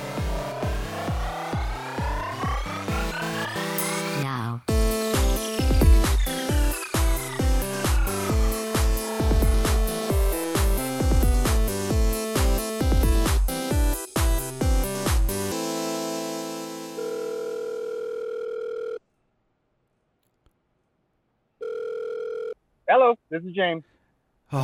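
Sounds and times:
loud musical stabs: 0.0 - 17.0
phone line electronic ring tones: 16.9 - 19.0, 21.6 - 22.6
speech: 23.3 - 23.9.

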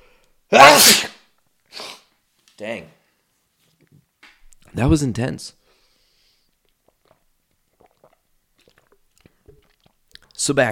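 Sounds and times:
speech: 0.5 - 1.1, 4.8 - 5.6, 10.4 - 10.7
person sneezing: 0.5 - 2.1
soft sniff: 5.6 - 6.6.

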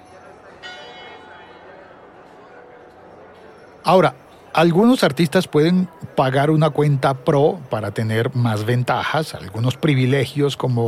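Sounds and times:
church bells ringing: 0.0 - 5.1
busy hum: 0.0 - 10.8
speech: 3.8 - 10.8.

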